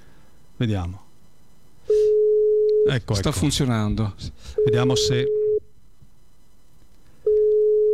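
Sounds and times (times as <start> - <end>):
speech: 0.6 - 1.0, 2.8 - 5.4
phone call ringing signal as a single steady tone: 1.9 - 2.9, 4.6 - 5.6, 7.3 - 7.9.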